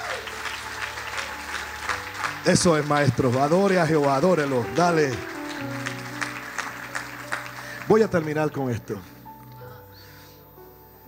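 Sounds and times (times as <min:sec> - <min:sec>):
crowd of people clapping loudly: 0:00.0 - 0:08.8
speech: 0:02.4 - 0:05.9, 0:07.9 - 0:09.1.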